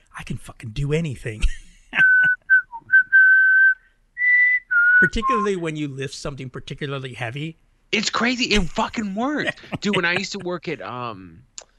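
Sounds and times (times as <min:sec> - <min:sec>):
speech: 0:00.2 - 0:02.0, 0:05.0 - 0:11.5
person whistling a movie score melody: 0:02.0 - 0:05.6
laughter: 0:09.2 - 0:10.8.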